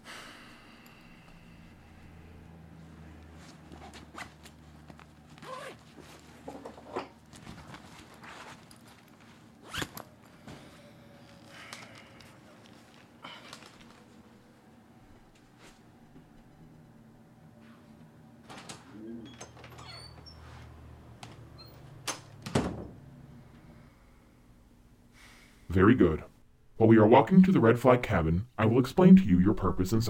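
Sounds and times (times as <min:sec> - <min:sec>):
steady low hum: 0:00.0 - 0:30.0
rustling and handling noises: 0:02.8 - 0:16.6
bag being zipped up with rasping zipper pulls: 0:05.3 - 0:07.2, 0:08.0 - 0:10.2
cabin door opening: 0:18.4 - 0:23.1
speech: 0:25.8 - 0:30.0.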